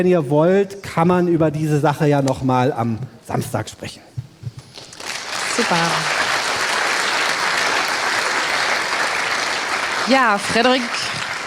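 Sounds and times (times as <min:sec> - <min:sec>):
speech: 0:00.0 - 0:04.2, 0:05.6 - 0:06.2, 0:10.1 - 0:11.2
audience applause after a talk: 0:04.9 - 0:11.4.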